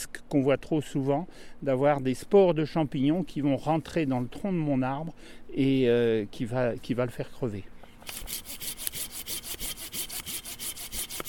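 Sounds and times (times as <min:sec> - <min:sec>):
speech: 0:00.0 - 0:08.7
Japanese-tooth pull saw rasping through a low tree branch: 0:08.0 - 0:11.2.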